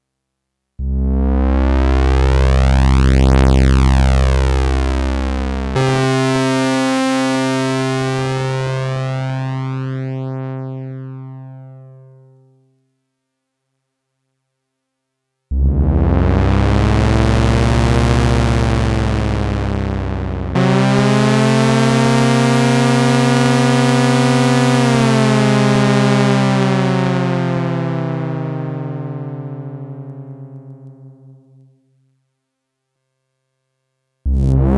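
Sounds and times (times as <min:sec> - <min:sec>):
synthesizer VCO2 modulated by filter envelope: 0:00.8 - 0:11.5, 0:15.5 - 0:31.8, 0:34.3 - 0:34.7.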